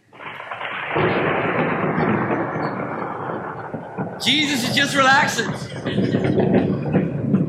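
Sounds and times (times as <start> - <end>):
deep rumble of thunder in a storm: 0.0 - 7.4
speech: 4.2 - 6.4.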